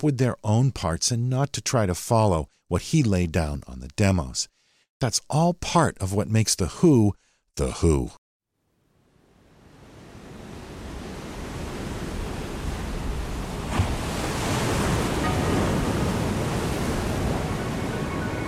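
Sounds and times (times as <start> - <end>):
speech: 0.0 - 8.2
ocean waves washing onto a beach: 9.1 - 18.4.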